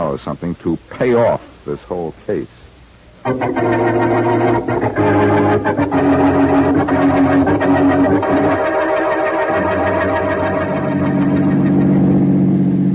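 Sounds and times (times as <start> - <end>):
speech: 0.1 - 2.6, 3.2 - 8.8
car engine roaring while driving fast: 3.2 - 12.9.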